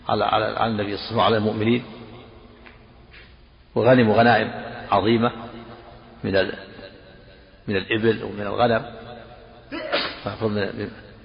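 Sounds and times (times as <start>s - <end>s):
speech: 0.1s - 2.0s, 3.8s - 5.4s, 6.2s - 6.7s, 7.7s - 9.0s, 10.2s - 11.0s
person sneezing: 9.7s - 10.3s.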